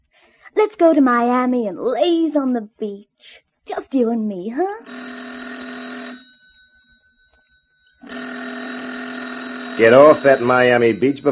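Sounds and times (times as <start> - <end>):
speech: 0.5 - 5.3, 9.8 - 11.3
telephone bell ringing: 4.8 - 11.3.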